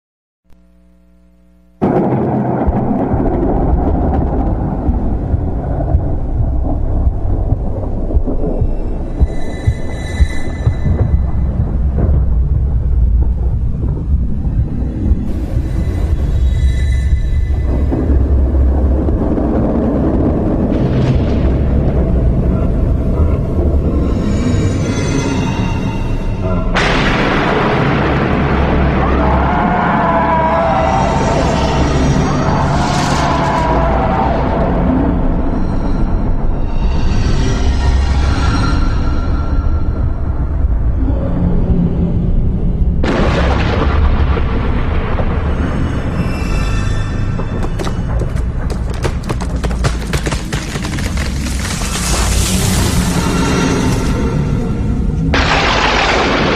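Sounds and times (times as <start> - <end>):
terror sounds in a forest: 1.8 - 56.5.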